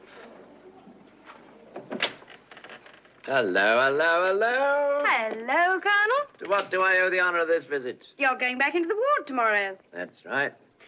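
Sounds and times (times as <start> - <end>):
door opening with creak and clatter: 1.7 - 3.3
speech: 3.3 - 10.6.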